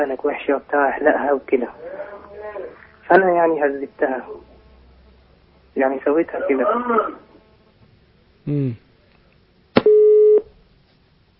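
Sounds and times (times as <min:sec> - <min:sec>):
speech: 0:00.0 - 0:04.5, 0:05.8 - 0:07.2, 0:08.5 - 0:08.8
telephone busy tone after a call line drops: 0:09.8 - 0:10.5.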